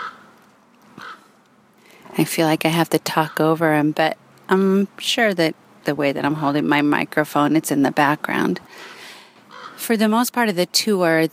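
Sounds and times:
crow cawing: 0:00.0 - 0:00.3, 0:01.0 - 0:01.4, 0:09.5 - 0:09.8
speech: 0:02.2 - 0:09.0, 0:09.8 - 0:11.3.

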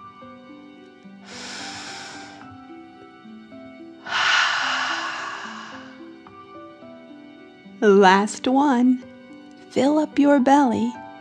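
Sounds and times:
soft music: 0:00.0 - 0:11.1
deep breath in and out: 0:01.2 - 0:02.6, 0:04.0 - 0:06.3
speech: 0:07.8 - 0:09.1, 0:09.8 - 0:11.0.

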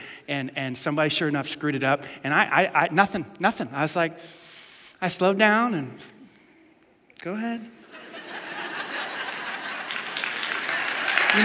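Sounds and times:
speech: 0:00.3 - 0:04.4, 0:05.0 - 0:06.2, 0:07.2 - 0:07.8
laughter: 0:07.8 - 0:11.4
audience applause with many hands clapping: 0:08.5 - 0:11.4.

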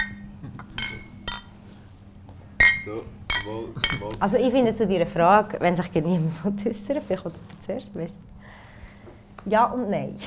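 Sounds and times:
glasses clinking during a toast: 0:00.0 - 0:01.6, 0:02.6 - 0:04.2
speech: 0:02.9 - 0:08.3, 0:09.4 - 0:10.2.

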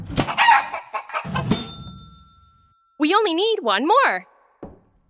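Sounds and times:
pet chicken clucking: 0:00.2 - 0:01.6
speech: 0:03.2 - 0:04.3.

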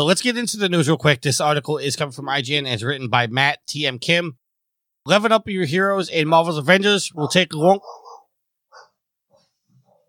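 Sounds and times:
speech: 0:00.0 - 0:04.4, 0:05.0 - 0:08.0
dog grumbling in low throaty bursts: 0:07.8 - 0:08.9.

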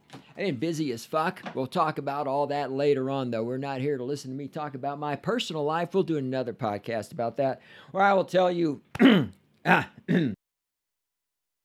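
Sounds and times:
speech: 0:00.4 - 0:10.4
throat clearing into a microphone: 0:08.9 - 0:10.4.

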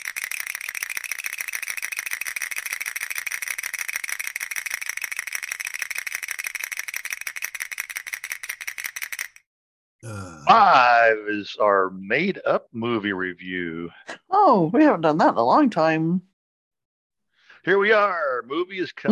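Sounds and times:
game wheel spinning with clicker clattering: 0:00.0 - 0:09.4
speech: 0:10.0 - 0:16.3, 0:17.6 - 0:19.1
laughter: 0:10.5 - 0:11.6, 0:18.6 - 0:19.1.

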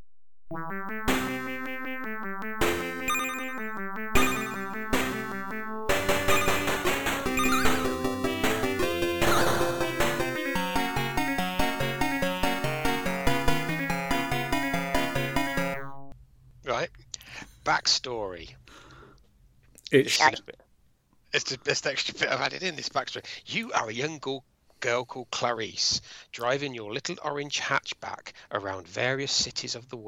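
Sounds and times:
speech: 0:00.5 - 0:01.3, 0:17.9 - 0:18.7, 0:19.9 - 0:20.6, 0:21.3 - 0:30.0
chiptune arcade driving game music from AY-3-8910 and YM2203 sound chips: 0:00.5 - 0:16.1
high beeps from arcade sound chips: 0:03.1 - 0:05.0, 0:06.1 - 0:08.1, 0:09.2 - 0:09.8.

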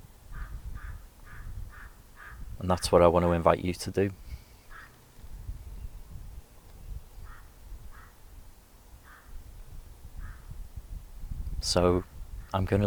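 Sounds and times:
harsh caw-like bird calls outdoors: 0:00.3 - 0:03.0, 0:04.4 - 0:05.1, 0:06.9 - 0:08.2, 0:09.0 - 0:09.4, 0:10.2 - 0:10.6
speech: 0:02.6 - 0:04.2, 0:11.7 - 0:12.8.

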